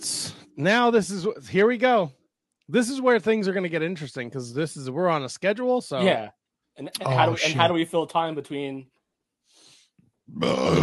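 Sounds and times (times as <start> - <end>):
speech: 0.6 - 8.9, 10.3 - 10.8
deep rumbling burp: 10.3 - 10.8.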